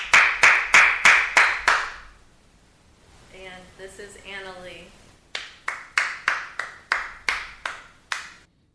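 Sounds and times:
person clapping hands sharply: 0.0s - 2.0s, 5.3s - 8.5s.

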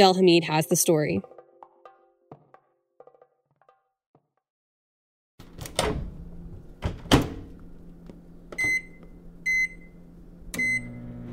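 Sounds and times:
speech: 0.0s - 1.3s
microwave oven humming: 5.4s - 11.3s
microwave oven keypad beeps: 8.6s - 9.9s, 10.6s - 10.9s.

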